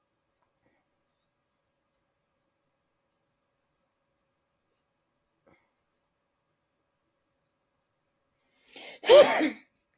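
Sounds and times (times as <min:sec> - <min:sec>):
sneeze: 0:09.0 - 0:09.6.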